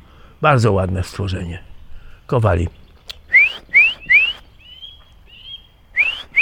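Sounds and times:
speech: 0.4s - 1.7s, 2.3s - 2.8s
man in a forest whistling in imitation of a nuthatch call: 3.1s - 6.3s.

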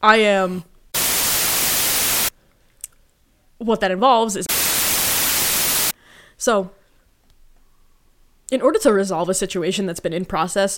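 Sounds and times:
speech: 0.0s - 0.7s, 3.6s - 4.6s, 6.4s - 6.8s, 8.5s - 10.7s
burst of static: 1.0s - 2.3s, 4.5s - 6.0s.

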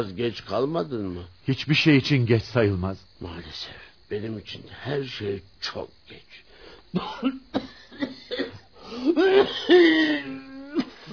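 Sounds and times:
speech: 0.0s - 7.8s, 9.0s - 10.5s
man coughing with harsh wheezy hacking: 6.9s - 11.1s.

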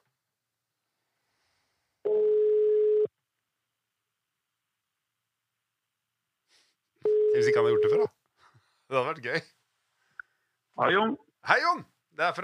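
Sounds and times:
faint breath: 0.9s - 2.0s, 8.3s - 8.9s
telephone ringback tone: 2.1s - 3.1s, 7.1s - 8.1s
speech: 7.4s - 8.2s, 8.9s - 9.6s, 10.8s - 12.4s.

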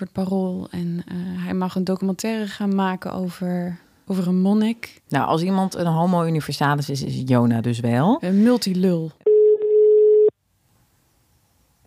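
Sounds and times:
speech: 0.0s - 9.2s
electronic ringback tone from an outgoing phone call: 9.3s - 10.3s.

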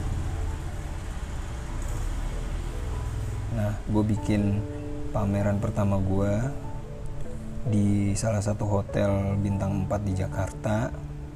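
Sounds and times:
noisy motorcycle engine roaring: 0.0s - 3.9s
road noise: 0.0s - 11.3s
speech: 3.6s - 6.6s, 7.6s - 11.0s.

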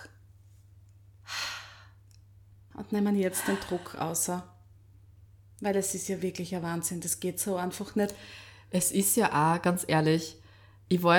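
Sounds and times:
faint steady low hum: 0.0s - 11.1s
person's deep breathy exhale: 1.2s - 2.0s
speech: 2.8s - 4.5s, 5.6s - 11.1s.

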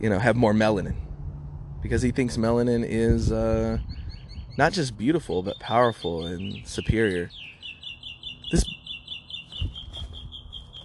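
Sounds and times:
speech: 0.0s - 1.0s, 1.8s - 4.0s, 4.6s - 7.8s, 8.5s - 8.8s
bird chirping outside: 3.6s - 10.8s.

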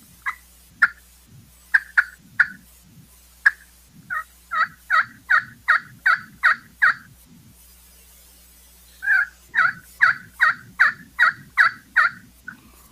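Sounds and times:
turkey clucks and yelps made on a friction call: 0.2s - 1.0s, 1.7s - 2.6s, 3.4s - 7.1s, 9.0s - 12.6s.

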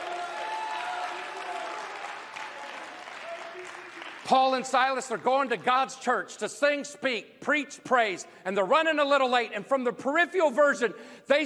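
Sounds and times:
room full of people applauding: 0.0s - 5.9s
speech: 4.3s - 11.4s.

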